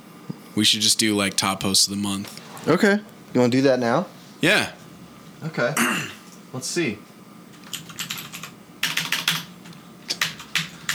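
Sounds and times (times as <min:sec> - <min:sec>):
speech: 0:00.6 - 0:04.8, 0:05.4 - 0:07.1
typing on a computer keyboard: 0:07.6 - 0:10.9.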